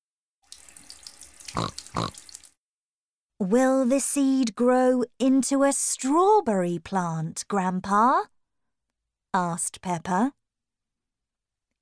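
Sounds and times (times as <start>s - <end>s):
water pouring from a watering can onto soil: 0.5s - 2.6s
grunting snorts: 1.5s - 2.2s
speech: 1.6s - 2.2s, 3.4s - 8.3s, 9.3s - 10.4s.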